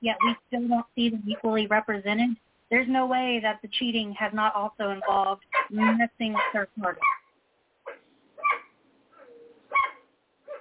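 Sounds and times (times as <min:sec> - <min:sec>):
speech: 0:00.0 - 0:07.2
dog barking next to a door: 0:05.0 - 0:07.2, 0:07.9 - 0:10.6.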